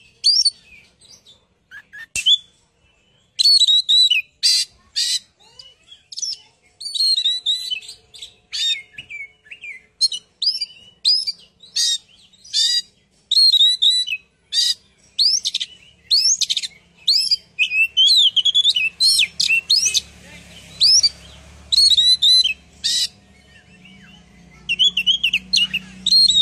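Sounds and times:
bird chirping and twittering: 0:00.0 - 0:26.4.

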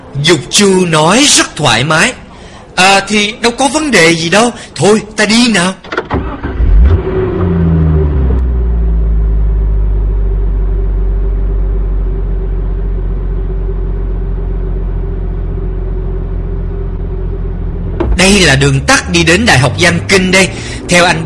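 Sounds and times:
speech: 0:00.1 - 0:02.2, 0:02.8 - 0:05.9, 0:18.2 - 0:21.2
car engine rumbling while driving along a small road: 0:05.9 - 0:21.2.

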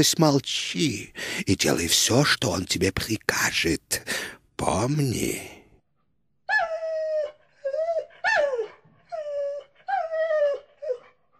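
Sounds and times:
speech: 0:00.0 - 0:05.6
dog howling and whimpering: 0:06.5 - 0:11.2.

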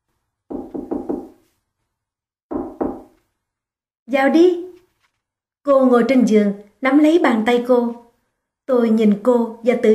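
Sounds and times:
knocking on a hotel room door: 0:00.5 - 0:01.4, 0:02.5 - 0:03.2
speech: 0:04.1 - 0:04.6, 0:05.6 - 0:08.0, 0:08.7 - 0:09.9.

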